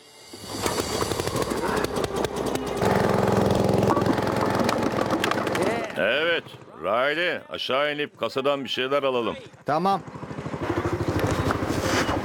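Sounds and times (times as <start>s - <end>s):
heavy engine of a gravel crusher starting up and running: 0.2s - 6.7s, 10.0s - 12.2s
rattling clatter of a gravel crusher: 0.4s - 6.6s
speech: 6.4s - 10.2s.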